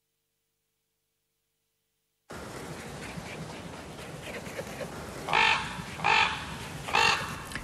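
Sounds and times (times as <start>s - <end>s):
outdoor ambience hiss: 0.0s - 7.6s
raven croaking: 5.2s - 7.4s.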